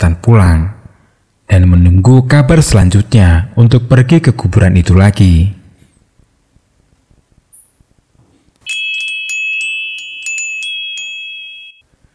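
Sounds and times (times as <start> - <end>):
speech: 0.0 - 0.8, 1.5 - 5.6
mobile phone ringing with electronic chiming melody: 8.6 - 11.9.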